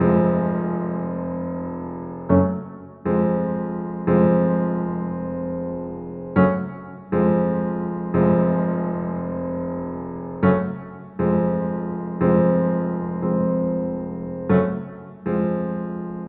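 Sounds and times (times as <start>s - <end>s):
piano: 0.0s - 16.2s.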